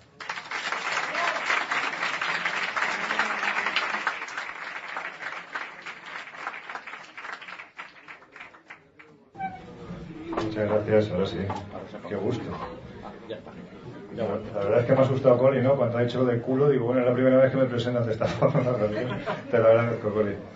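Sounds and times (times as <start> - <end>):
crowd applauding: 0.0 - 9.1
speech: 10.6 - 20.5
laughter: 11.7 - 14.4, 18.2 - 20.5.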